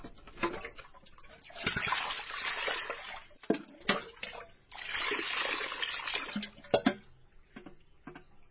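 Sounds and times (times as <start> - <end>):
water running and splashing over raw chicken being rinsed: 0.4 - 6.8.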